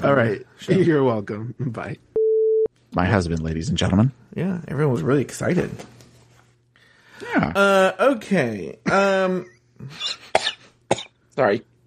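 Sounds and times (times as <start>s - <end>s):
speech: 0.0s - 2.1s, 2.9s - 6.0s, 7.2s - 10.5s, 11.4s - 11.7s
person coughing close to the mic: 10.1s - 11.2s.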